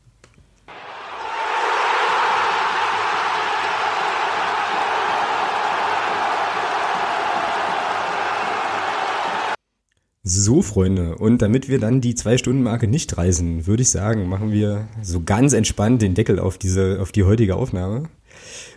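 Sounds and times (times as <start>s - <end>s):
large crowd cheering and roaring: 0.7s - 9.6s
speech: 10.3s - 18.5s.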